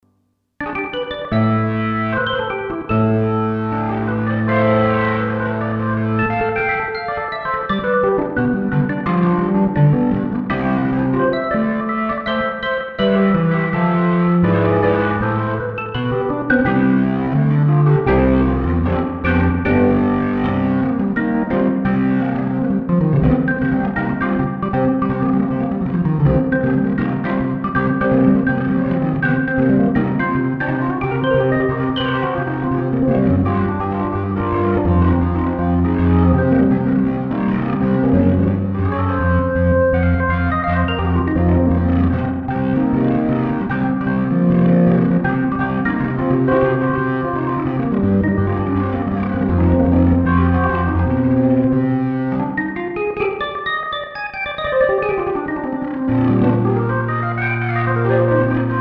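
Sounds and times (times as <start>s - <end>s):
heavy organ: 0.7s - 58.8s.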